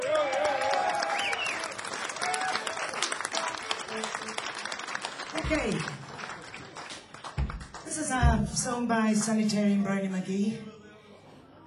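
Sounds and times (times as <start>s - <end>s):
faint voices and whoops from crowd: 0.0s - 3.0s
crowd at a live music show applauding: 0.0s - 8.2s
speech: 5.5s - 6.0s, 8.5s - 10.7s.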